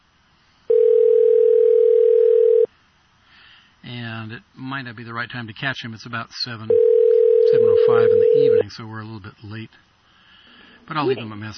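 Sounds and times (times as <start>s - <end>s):
ringback tone on an outgoing phone call: 0.7s - 2.7s, 6.7s - 8.6s
speech: 4.8s - 9.9s, 10.9s - 11.5s.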